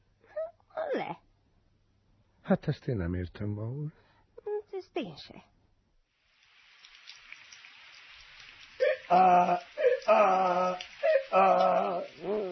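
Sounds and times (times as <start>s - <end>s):
speech: 1.0s - 1.2s, 2.5s - 4.1s, 4.9s - 5.5s, 9.1s - 12.5s
heavy rain pouring: 6.2s - 12.5s.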